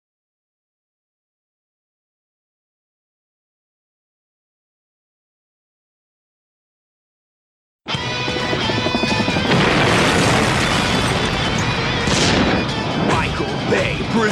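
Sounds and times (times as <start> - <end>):
loud explosion with sustained roar and tonal ringing: 8.5 - 13.8.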